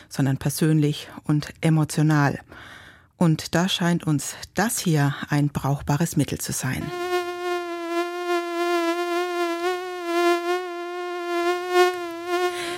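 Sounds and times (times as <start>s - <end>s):
speech: 0.1s - 7.1s
mosquito whine: 6.8s - 12.7s.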